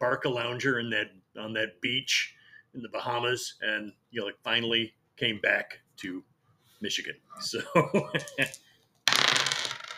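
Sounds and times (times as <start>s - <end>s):
speech: 0.0s - 8.6s
laughter: 7.4s - 8.6s
dice rolling and rattling: 8.2s - 9.9s.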